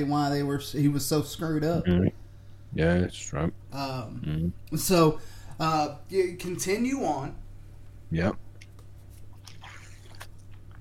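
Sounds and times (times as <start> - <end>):
speech: 0.0 - 7.4, 8.1 - 8.4
sipping and swallowing soda: 8.6 - 10.7.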